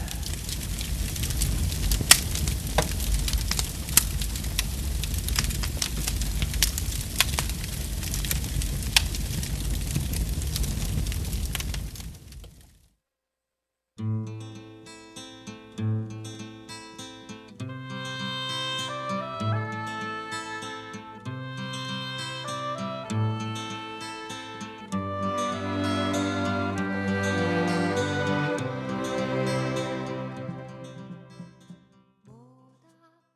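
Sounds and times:
burning firewood crackling and popping: 0.0 - 12.8
gentle melodic music: 17.7 - 31.6.

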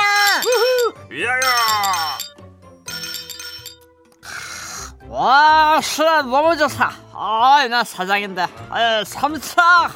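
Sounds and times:
glasses of somaek clinking in a toast among coworkers: 0.1 - 3.8
speech: 5.2 - 9.9.

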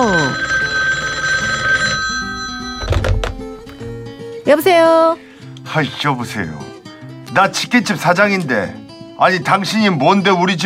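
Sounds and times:
telephone ringing: 0.0 - 3.7
speech: 4.5 - 6.7, 7.3 - 10.6.

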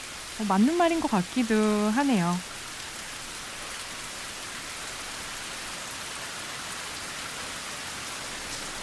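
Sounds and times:
steady rain falling: 0.0 - 8.8
speech: 0.4 - 2.5.

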